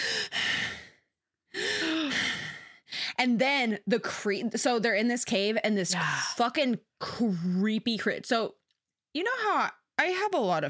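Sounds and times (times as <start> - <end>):
woman vocally imitating heavy breathy exhalations: 0.0 - 3.2
speech: 3.2 - 8.6, 9.2 - 10.6.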